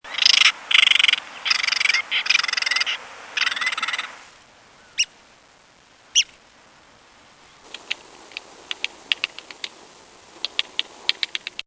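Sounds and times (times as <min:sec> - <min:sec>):
red-cockaded woodpecker: 0:00.1 - 0:04.1, 0:07.6 - 0:09.8, 0:10.4 - 0:11.6.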